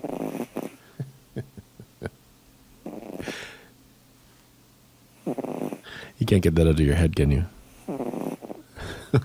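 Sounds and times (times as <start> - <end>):
cat snoring: 0.0 - 0.9, 2.8 - 3.6, 5.2 - 5.9, 7.8 - 8.7
speech: 6.3 - 7.6.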